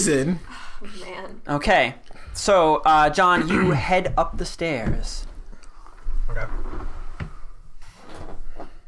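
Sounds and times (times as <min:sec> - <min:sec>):
speech: 0:00.0 - 0:05.3, 0:06.3 - 0:06.9
soft knocks: 0:03.7 - 0:05.4
chair squeaking and creaking: 0:06.2 - 0:08.7.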